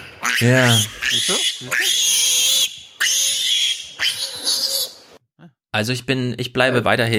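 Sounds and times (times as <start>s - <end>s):
piglets squealing: 0.0s - 5.2s
speech: 0.4s - 2.2s, 5.8s - 7.1s.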